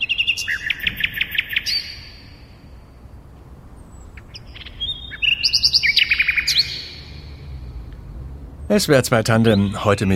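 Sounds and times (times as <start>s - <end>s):
European robin singing high thin trilling notes: 0.0s - 10.1s
faint low rumble: 2.0s - 9.2s
speech: 8.7s - 10.1s.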